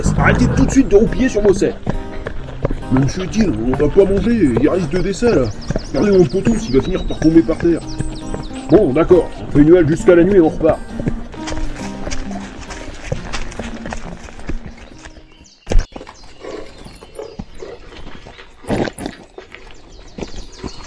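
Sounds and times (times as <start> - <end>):
horses' hooves clip-clopping: 0.0 - 20.8
speech: 0.2 - 2.0, 2.6 - 8.1, 8.7 - 11.1.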